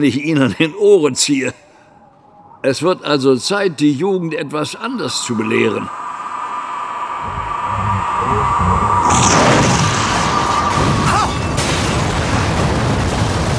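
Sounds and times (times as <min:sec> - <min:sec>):
speech: 0:00.0 - 0:01.7, 0:02.6 - 0:06.1
sustained rumbling roar of house explosion: 0:05.1 - 0:13.1
house exploding: 0:07.0 - 0:13.5
crackling debris: 0:09.1 - 0:13.5.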